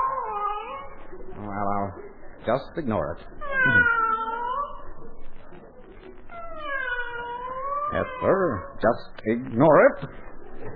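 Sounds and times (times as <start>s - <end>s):
cat yowling: 0.0s - 1.0s, 3.4s - 4.9s, 6.3s - 8.8s
speech: 1.8s - 4.0s, 7.9s - 10.7s.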